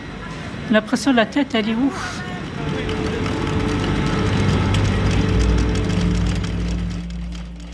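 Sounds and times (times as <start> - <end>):
speech: 0.7 - 2.2
heavy industrial machinery running loudly: 2.3 - 7.7.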